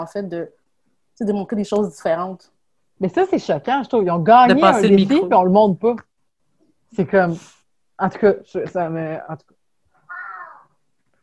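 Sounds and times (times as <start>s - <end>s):
speech: 0.0s - 0.6s, 1.2s - 6.1s, 6.9s - 9.6s
cat meowing loudly: 10.0s - 10.7s.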